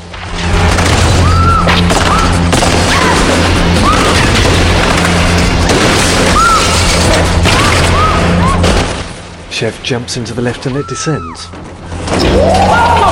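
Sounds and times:
gunfire in a film fight scene in a shirt factory: 0.5 - 9.1
speech: 9.6 - 13.0.

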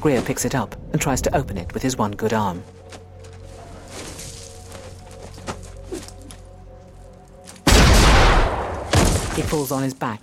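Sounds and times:
speech: 0.0 - 2.8, 9.4 - 10.2
rifle shot: 7.7 - 9.3.

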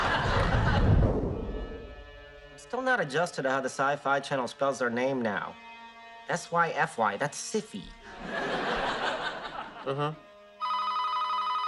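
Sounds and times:
audience laughter: 0.0 - 1.6, 8.1 - 10.1
speech: 2.7 - 5.7, 6.3 - 8.7, 9.8 - 10.3
telephone ringing with an electronic tone: 10.6 - 11.6.

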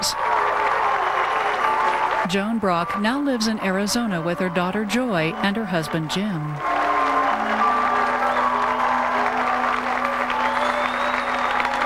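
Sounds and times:
applause from a sizable audience: 0.0 - 2.3, 4.0 - 11.8
speech: 2.3 - 6.7.

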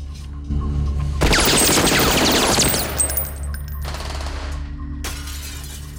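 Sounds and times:
rapid gunfire: 1.2 - 4.5.

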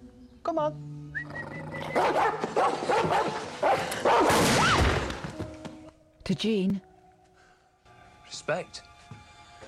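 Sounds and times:
speech: 0.4 - 4.8, 6.3 - 6.9, 8.3 - 8.9
dog barking: 2.0 - 4.4.

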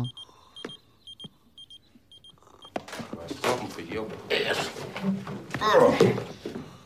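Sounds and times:
alarm clock beeping in short high electronic bursts: 0.0 - 2.8
speech: 3.7 - 6.4.

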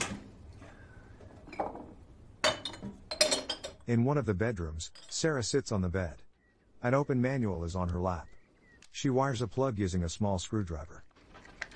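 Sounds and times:
glass jars clinking as taken off a shelf: 1.4 - 3.8, 4.9 - 5.2
speech: 3.9 - 6.2, 6.8 - 11.1.

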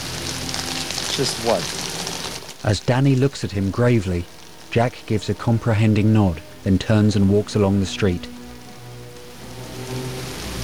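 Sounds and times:
pouring rain on a city street: 0.0 - 10.6
speech: 1.2 - 1.9, 2.6 - 8.3.

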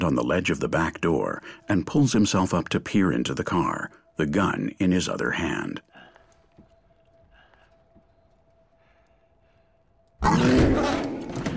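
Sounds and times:
speech: 0.0 - 5.9
mountain lion roaring: 10.2 - 11.5.

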